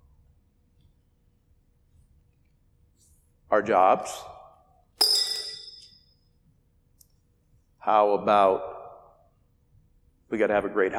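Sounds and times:
speech: 0:03.5 - 0:04.3, 0:07.9 - 0:08.8, 0:10.3 - 0:10.9
rock dropping into a glass jar holding many rocks: 0:05.0 - 0:06.1.

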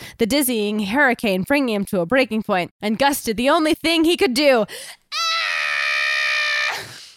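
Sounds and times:
speech: 0:00.2 - 0:05.0
blood-curdling piercing scream: 0:05.1 - 0:07.1.

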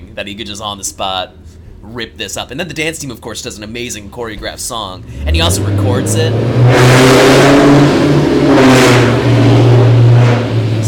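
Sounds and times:
speech: 0:00.2 - 0:07.4
loud car engine revving as it drives by: 0:05.0 - 0:10.8.

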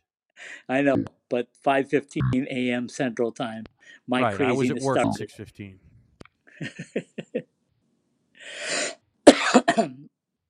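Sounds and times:
speech: 0:00.6 - 0:05.9, 0:06.6 - 0:07.5, 0:09.8 - 0:10.1
laughter: 0:04.2 - 0:05.8, 0:06.6 - 0:07.4
person coughing: 0:04.3 - 0:05.2, 0:09.3 - 0:10.1
raspy intake of breath: 0:08.4 - 0:09.0.

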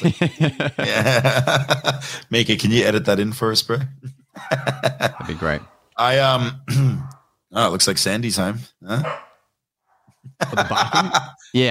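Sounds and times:
laughter: 0:00.0 - 0:03.0, 0:04.3 - 0:05.6, 0:10.3 - 0:11.6
speech: 0:00.0 - 0:09.2, 0:10.3 - 0:11.6
dog barking: 0:09.0 - 0:10.0.

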